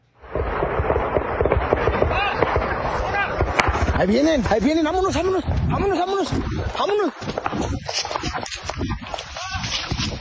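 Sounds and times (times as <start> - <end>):
rapid gunfire during an armed clash: 0.2 - 5.3
voices and commotion: 1.4 - 10.1
speech: 4.0 - 8.2.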